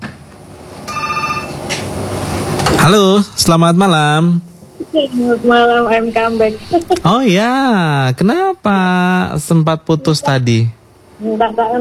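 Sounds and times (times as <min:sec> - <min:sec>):
steady noise: 0:00.0 - 0:11.7
telephone ringing for a phone-in call: 0:00.9 - 0:01.7
speech: 0:02.9 - 0:11.7.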